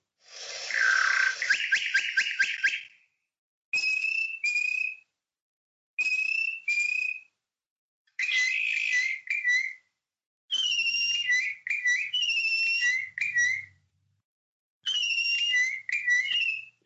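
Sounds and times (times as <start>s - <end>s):
two male bokmakierie bushshrikes singing a duet: 0.4s - 3.0s, 3.8s - 5.1s, 6.0s - 7.4s, 8.2s - 9.9s, 10.5s - 13.8s, 14.8s - 16.8s.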